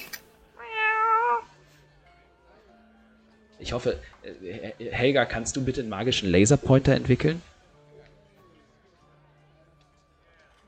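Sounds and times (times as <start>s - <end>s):
cat meowing: 0.6s - 1.6s
speech: 3.6s - 7.5s.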